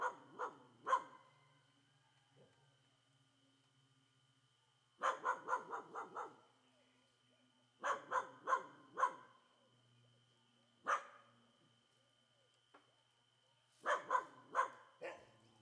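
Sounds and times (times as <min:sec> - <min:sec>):
several dogs barking loudly in a quiet street: 0:00.0 - 0:01.3, 0:05.0 - 0:06.5, 0:07.8 - 0:09.4, 0:10.9 - 0:11.2, 0:13.8 - 0:15.4
faint constant hum: 0:00.0 - 0:15.6.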